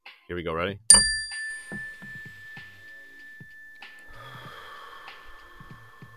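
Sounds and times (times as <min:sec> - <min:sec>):
mindfulness bell ringing: 0:00.9 - 0:05.7
deep breaths and nasal inhales: 0:04.0 - 0:06.1.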